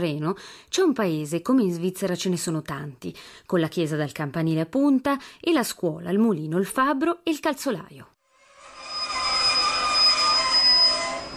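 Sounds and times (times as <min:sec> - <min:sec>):
speech: 0:00.0 - 0:08.1
train wheels and brakes squealing while stopping at a small station: 0:08.4 - 0:11.3.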